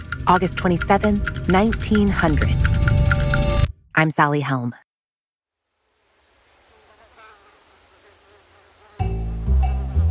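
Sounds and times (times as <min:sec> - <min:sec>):
speech: 0:00.3 - 0:02.7, 0:04.0 - 0:04.8
mosquitoes buzzing in glass vials: 0:06.2 - 0:10.0.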